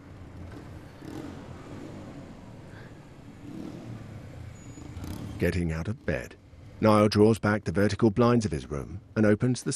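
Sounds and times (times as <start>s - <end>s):
motorbike engine revving and idling outdoors: 0.4s - 2.4s, 3.3s - 5.4s
speech: 5.4s - 9.7s.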